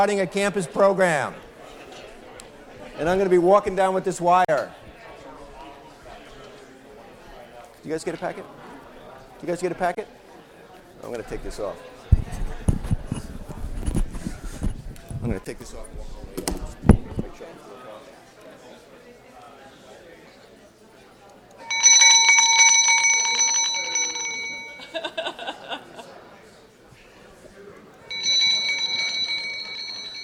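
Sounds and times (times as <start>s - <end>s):
speech: 0.0s - 1.5s, 3.0s - 4.9s, 7.8s - 8.6s, 9.4s - 10.2s, 11.0s - 11.9s, 15.2s - 16.6s
quiet chatter from people: 0.0s - 30.2s
school bell ringing: 21.6s - 25.1s, 28.1s - 30.2s
laughter: 24.7s - 26.4s.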